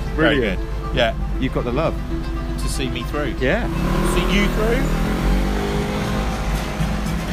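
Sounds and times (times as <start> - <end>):
speech: 0.2 - 5.1
car engine revving in a jerky kangaroo-hopping start: 3.2 - 7.3.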